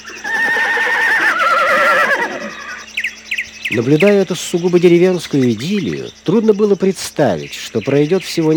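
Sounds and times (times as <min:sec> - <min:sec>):
young mare neighing impatiently for her foal on a forest meadow: 0:00.1 - 0:02.9
speech: 0:03.7 - 0:08.5.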